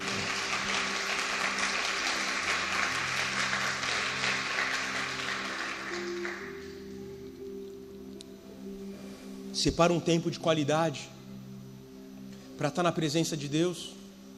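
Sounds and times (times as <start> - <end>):
large crowd clapping: 0.0 - 7.0
sustained low musical tones: 0.0 - 14.3
speech: 9.6 - 11.2, 12.6 - 14.0.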